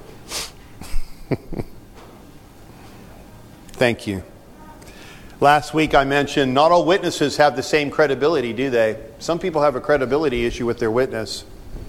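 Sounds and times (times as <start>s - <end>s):
speech: 1.3s - 1.6s, 3.8s - 4.3s, 5.4s - 11.5s
exaggerated breathing into a microphone: 4.8s - 5.4s.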